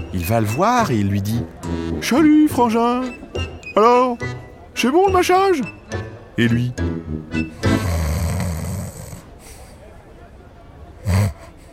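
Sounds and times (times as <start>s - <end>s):
speech: 0.1s - 5.8s, 6.4s - 7.6s
storyteller's voice imitating an animal character snoring: 7.6s - 9.3s, 11.0s - 11.6s.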